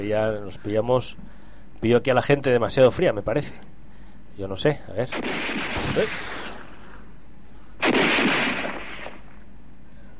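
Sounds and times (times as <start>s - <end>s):
speech: 0.0s - 3.7s, 4.4s - 6.4s
gunshots fired into the air: 5.1s - 7.0s, 7.8s - 9.4s.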